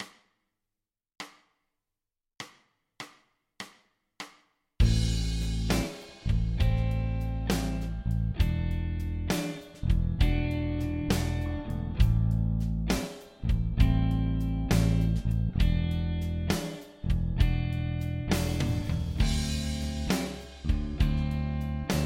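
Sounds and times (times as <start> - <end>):
dorian backing track: 4.8 - 22.0.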